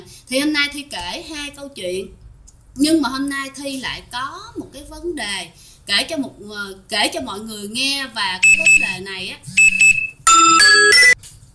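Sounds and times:
speech: 0.3 - 2.2, 2.8 - 9.6
electronic alarm clock melodic chime: 9.6 - 11.2.

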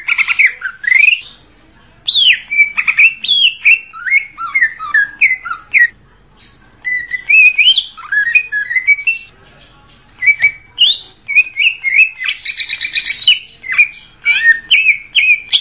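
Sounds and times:
leafbird singing clear slurred whistles: 2.1 - 5.9, 6.9 - 9.3, 10.2 - 15.5.

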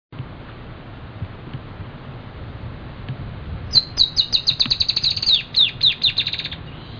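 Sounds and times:
Dusky-tailed Antbird Drymophila malura calling: 3.7 - 6.9.

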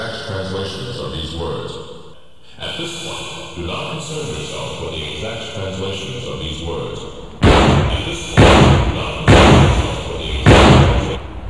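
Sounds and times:
speech: 2.8 - 7.2
muzzle-loaded bronze cannon firing: 7.3 - 11.4.

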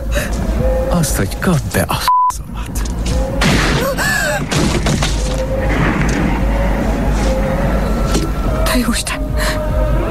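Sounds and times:
speech: 0.9 - 2.9, 8.8 - 10.0
low rumble: 2.4 - 10.0
gunshots in a tense film scene: 3.4 - 6.4.

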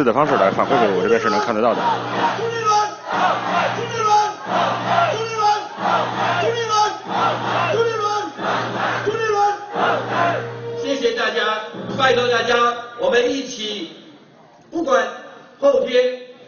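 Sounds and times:
large crowd chanting a candidate's election slogan at a Kuomintang overseas campaign rally: 0.0 - 10.8
speech: 0.0 - 14.0, 14.7 - 16.2.

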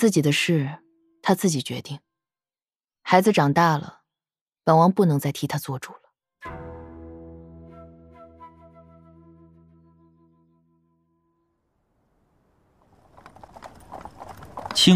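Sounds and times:
speech: 0.0 - 2.0, 3.1 - 4.0, 4.7 - 6.6, 14.8 - 14.9
hooves of a horse-drawn carriage clip-clopping: 12.8 - 14.9.

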